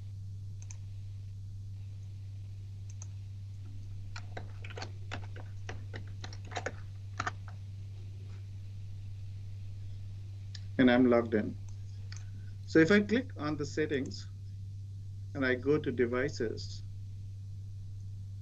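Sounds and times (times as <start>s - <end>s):
steady low hum: 0.0s - 18.3s
password typed on a computer keyboard: 4.1s - 7.6s
speech: 10.8s - 11.6s, 12.7s - 14.3s, 15.4s - 16.8s.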